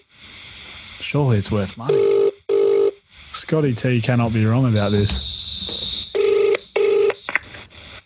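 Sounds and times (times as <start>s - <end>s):
speech: 1.1s - 2.1s, 3.3s - 5.3s
telephone line noise: 1.8s - 3.0s, 4.8s - 7.6s
buzzing telephone ring tones through the earpiece: 1.9s - 3.0s, 5.6s - 7.2s
brief electronic telephone beeps: 4.7s - 7.6s.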